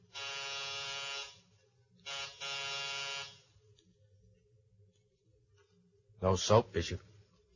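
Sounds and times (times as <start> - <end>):
apartment door buzzer: 0.0 - 1.4, 2.0 - 3.5
speech: 6.2 - 7.1.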